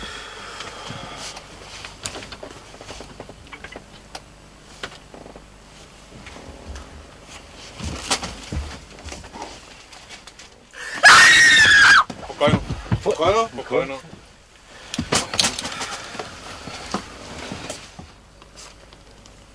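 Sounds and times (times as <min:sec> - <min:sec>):
woman screaming in a comedy film scene: 0:10.8 - 0:12.1
people talking: 0:12.3 - 0:14.2.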